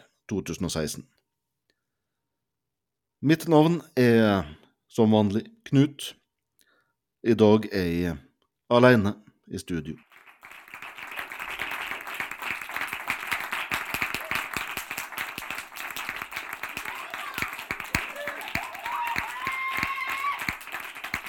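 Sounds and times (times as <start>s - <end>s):
speech: 0.3s - 1.2s, 3.2s - 6.2s, 7.2s - 10.1s
crowd applauding: 10.0s - 21.2s.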